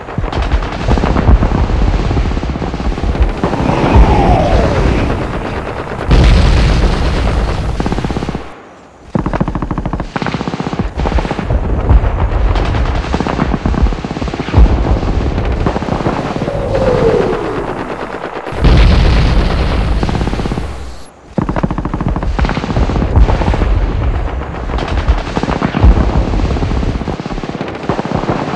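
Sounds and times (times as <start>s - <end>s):
bombing on an army beach: 0.0s - 10.2s, 10.8s - 27.5s.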